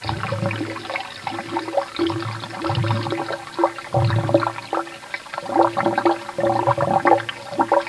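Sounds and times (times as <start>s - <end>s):
toilet sound: 0.0s - 7.8s.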